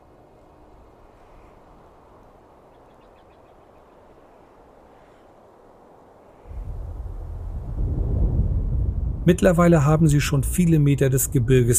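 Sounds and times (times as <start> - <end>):
deep rumbling and thundering roar from the mountains: 6.5 - 10.5
speech: 9.3 - 11.7.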